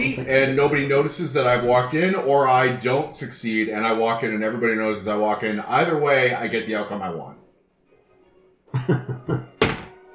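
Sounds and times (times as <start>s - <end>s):
speech: 0.0s - 7.4s, 8.7s - 9.5s
door crashing as it bursts open: 9.6s - 10.0s
heavy thuds of a door being kicked: 9.6s - 10.0s.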